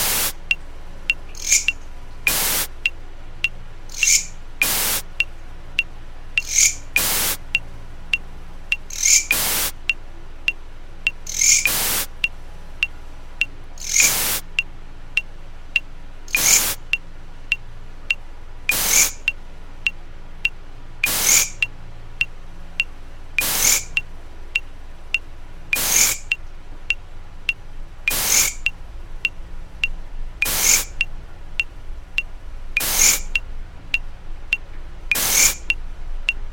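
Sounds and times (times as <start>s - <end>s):
Mecopoda katydid stridulation chirps: 0.0s - 21.7s, 22.8s - 24.1s, 25.1s - 29.4s, 30.4s - 34.0s, 35.1s - 36.4s
white-noise metronome pulses: 0.0s - 36.5s.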